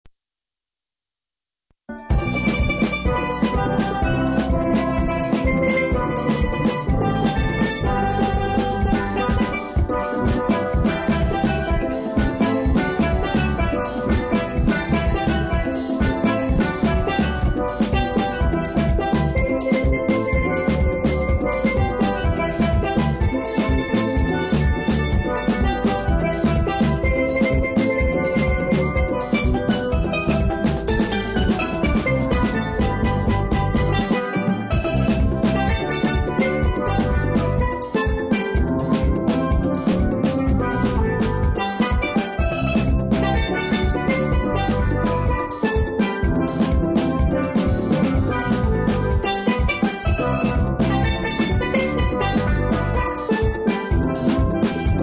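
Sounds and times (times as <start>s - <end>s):
acoustic Caribbean steel drum band playing: 1.9s - 55.0s.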